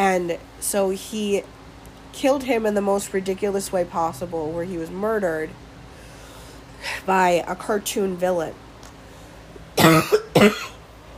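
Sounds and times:
speech: 0:00.2 - 0:05.6, 0:06.8 - 0:08.6, 0:10.0 - 0:10.7
harsh coughs: 0:09.8 - 0:10.8.

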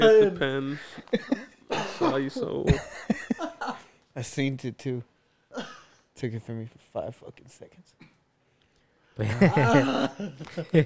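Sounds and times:
speech: 0:00.0 - 0:03.5, 0:04.2 - 0:08.1, 0:09.2 - 0:10.8
laughter: 0:00.0 - 0:04.0, 0:09.2 - 0:10.8
person coughing and sputtering from chili down the wrong pipe: 0:01.7 - 0:02.2.

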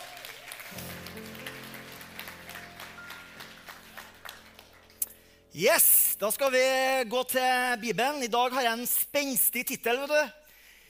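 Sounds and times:
crowd applauding: 0:00.0 - 0:05.4
speech: 0:05.6 - 0:10.4.

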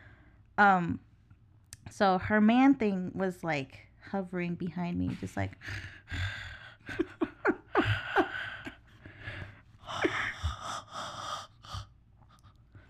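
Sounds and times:
speech: 0:00.6 - 0:01.1, 0:01.8 - 0:06.3, 0:06.9 - 0:07.2
person imitating creepy heavy breathing with raspy wheezy gasps: 0:07.7 - 0:11.9.

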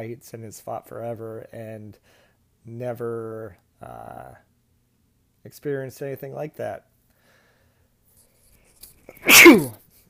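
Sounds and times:
speech: 0:00.0 - 0:04.5, 0:05.4 - 0:06.9, 0:09.1 - 0:09.8
loud sneeze: 0:09.1 - 0:09.8.

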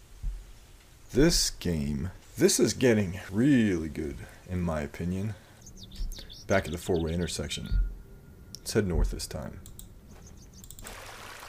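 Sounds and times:
speech: 0:01.1 - 0:05.4, 0:06.5 - 0:07.9, 0:08.7 - 0:09.7
faint chirping birds: 0:02.5 - 0:10.8
steady stream of flowing water babbling: 0:10.8 - 0:11.4.

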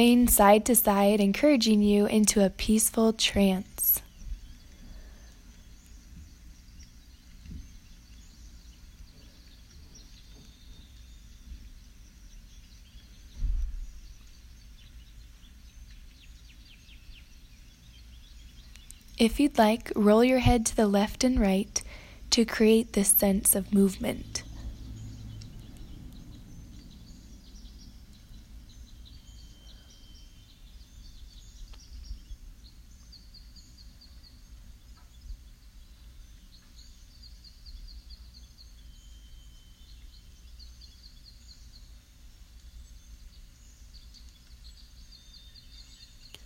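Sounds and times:
speech: 0:00.0 - 0:04.0, 0:19.2 - 0:24.4
birds chirping and singing: 0:00.0 - 0:46.4
low rumble of outdoor ambience: 0:00.0 - 0:46.4.

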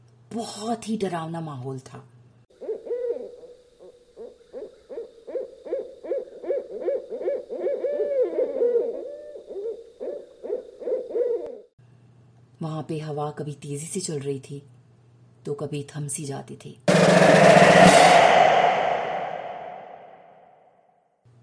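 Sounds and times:
speech: 0:00.3 - 0:02.2, 0:12.7 - 0:14.8, 0:15.4 - 0:18.2
owl hooting: 0:04.2 - 0:11.5.

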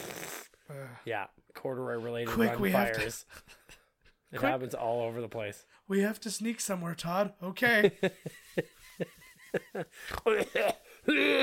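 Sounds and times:
speech: 0:01.0 - 0:03.6, 0:04.3 - 0:11.4
laughter: 0:07.8 - 0:10.6
man coughing and hacking: 0:10.0 - 0:11.4
man making strained throat-clearing groans: 0:10.0 - 0:11.4.

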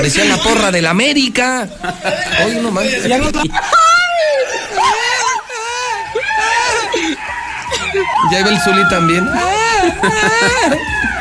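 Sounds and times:
people laughing: 0:00.0 - 0:00.8, 0:01.4 - 0:11.1
speech: 0:00.0 - 0:03.9, 0:07.9 - 0:11.1
people screaming at a fair: 0:03.6 - 0:11.1.

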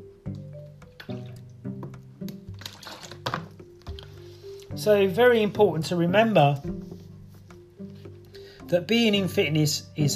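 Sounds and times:
person drinking water with soft gulping: 0:00.8 - 0:04.1
speech: 0:04.8 - 0:06.9, 0:08.7 - 0:10.1.

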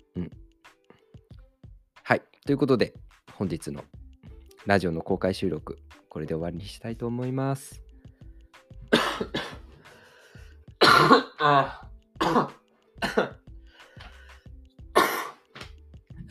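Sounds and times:
speech: 0:02.1 - 0:04.0, 0:04.6 - 0:07.8, 0:11.4 - 0:12.5
person coughing: 0:08.9 - 0:09.7, 0:10.8 - 0:13.4, 0:15.0 - 0:15.4.

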